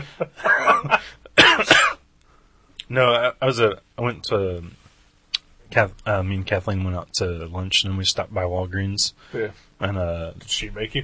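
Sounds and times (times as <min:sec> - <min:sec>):
raspy coughing: 0:00.0 - 0:02.1
speech: 0:00.2 - 0:01.8, 0:02.9 - 0:04.8, 0:05.7 - 0:11.0.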